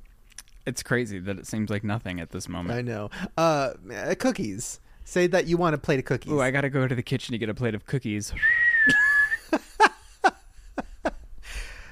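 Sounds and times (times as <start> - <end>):
speech: 0.7 - 9.6
person whistling a steady high note: 8.4 - 9.5.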